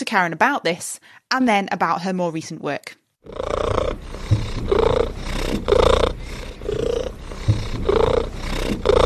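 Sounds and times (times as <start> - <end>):
speech: 0.0 - 4.1
pet domestic cat purring loudly: 3.2 - 9.0.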